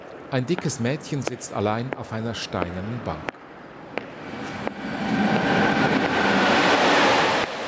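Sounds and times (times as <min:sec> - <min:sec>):
speech: 0:00.3 - 0:03.3
loud noisy freight train rumbling past: 0:03.9 - 0:07.6.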